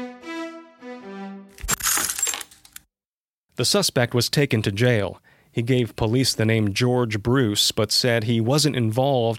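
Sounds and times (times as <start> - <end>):
sustained musical tones: 0.0 - 1.6
scattered bright tinkling pieces of a shattered crown: 1.6 - 2.6
speech: 3.6 - 9.3.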